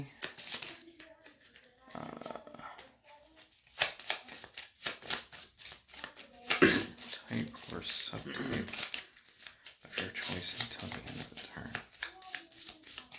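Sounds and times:
card rustling: 0:00.0 - 0:13.1
playing cards discarded and drawn during a card game: 0:00.1 - 0:01.6, 0:03.3 - 0:13.1.

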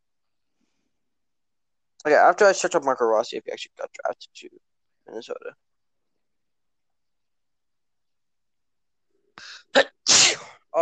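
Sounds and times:
speech: 0:02.0 - 0:05.7
person sneezing: 0:09.4 - 0:10.6.

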